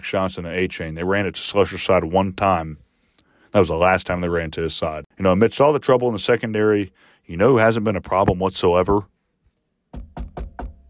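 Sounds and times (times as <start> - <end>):
speech: 0.0 - 2.8, 3.5 - 9.2
knocking on wood: 9.9 - 10.8.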